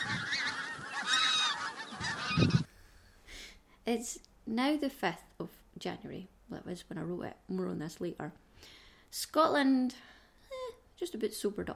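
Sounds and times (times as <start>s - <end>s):
flock of geese honking: 0.0s - 2.7s
speech: 2.4s - 2.6s, 3.9s - 10.1s, 11.0s - 11.7s.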